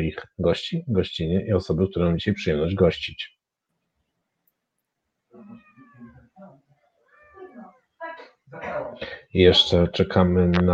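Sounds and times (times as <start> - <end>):
speech: 0.0 - 3.4, 8.5 - 10.7
foster cat meowing: 5.4 - 8.0.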